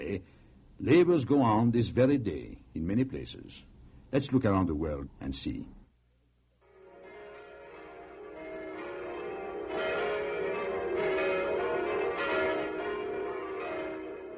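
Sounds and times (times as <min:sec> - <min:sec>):
speech: 0:00.1 - 0:05.8
church bells pealing: 0:06.7 - 0:14.3.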